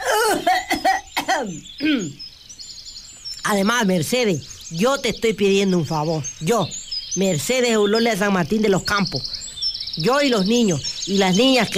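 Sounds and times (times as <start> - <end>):
person coughing loud and hoarse: 0.0 - 2.2
speech: 1.4 - 2.2, 3.4 - 9.4, 10.0 - 11.7.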